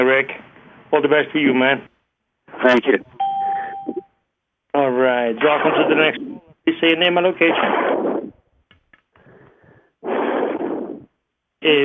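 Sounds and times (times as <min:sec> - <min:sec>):
speech: 0:00.0 - 0:01.9, 0:02.6 - 0:03.2, 0:04.8 - 0:08.3, 0:11.6 - 0:11.8
caller breathing into a microphone: 0:09.1 - 0:11.0.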